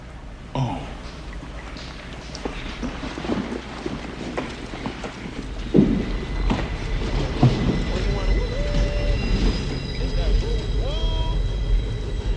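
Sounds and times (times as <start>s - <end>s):
train rumbling through tunnel: 0.0s - 12.3s
thin high metallic train wheel squeals: 4.8s - 12.3s.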